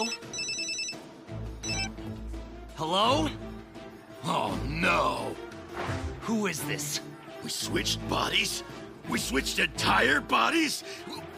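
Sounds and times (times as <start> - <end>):
cell phone ringtone chiming: 0.0 - 2.0
speech: 2.8 - 3.5, 4.2 - 11.2.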